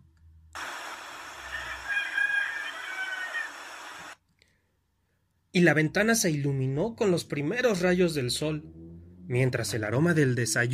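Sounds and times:
steady broadband wash: 0.6s - 1.4s, 3.4s - 4.2s
roosters crowing: 1.4s - 4.2s
speech: 5.5s - 10.7s.

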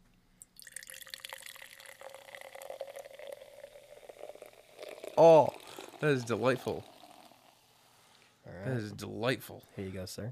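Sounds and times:
liquid pouring into a container: 0.4s - 7.8s
speech: 5.2s - 6.9s, 8.7s - 10.3s.

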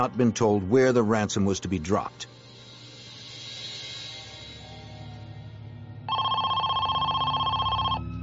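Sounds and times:
speech: 0.0s - 2.4s
telephone ringing in a fast trilling burst: 6.1s - 8.0s.

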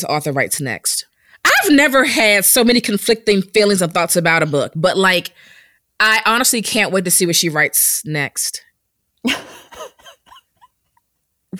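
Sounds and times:
speech: 0.0s - 10.0s
person coughing: 9.3s - 10.7s.

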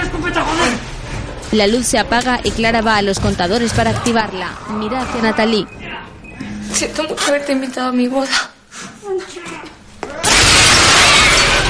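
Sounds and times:
speech: 1.5s - 5.8s, 6.7s - 8.5s
glass pane smashed by a zombie: 10.2s - 11.6s.

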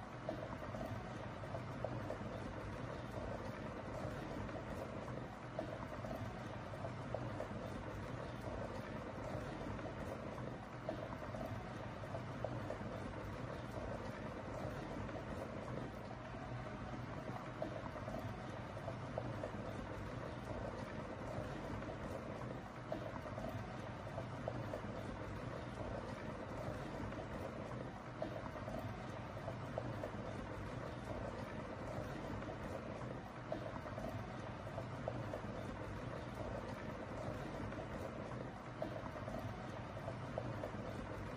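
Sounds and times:
water boiling in a kettle: 0.0s - 41.3s.

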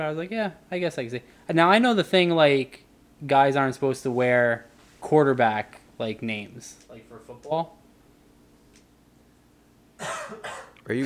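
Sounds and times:
speech: 0.0s - 7.8s, 10.0s - 11.0s
person coughing through a microphone on a call: 10.0s - 11.0s.

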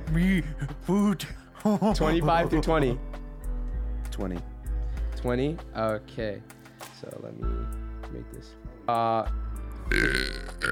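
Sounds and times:
speech: 0.1s - 3.1s, 4.2s - 4.5s, 5.2s - 10.7s
loud throaty burp: 9.9s - 10.7s.

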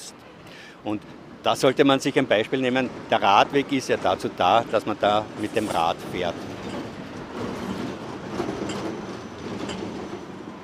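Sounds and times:
tram rumbling past: 0.0s - 10.6s
speech: 0.8s - 6.5s
high squeaks from the tram wheels: 3.1s - 10.6s.

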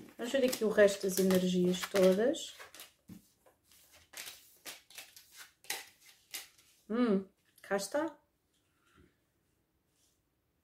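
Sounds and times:
tarot cards being shuffled and handled during a tarot reading: 0.0s - 6.8s
speech: 0.2s - 2.9s, 6.9s - 8.2s.

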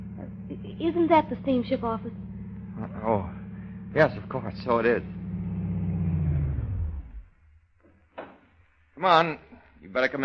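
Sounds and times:
car engine rumbling and cutting off: 0.0s - 7.8s
speech: 0.2s - 5.2s, 9.0s - 10.2s
brief clunk: 8.2s - 8.5s.

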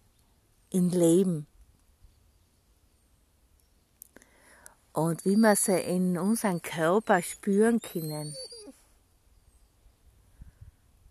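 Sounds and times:
speech: 0.7s - 1.5s, 5.0s - 8.5s
dog on a leash whining: 6.5s - 8.8s.

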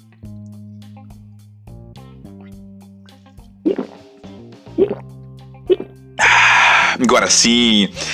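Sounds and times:
speech: 3.6s - 4.1s, 4.8s - 5.8s, 7.0s - 8.1s
person swallowing water sipped from a thermal cup: 3.7s - 4.0s, 4.8s - 5.1s, 5.7s - 5.9s.

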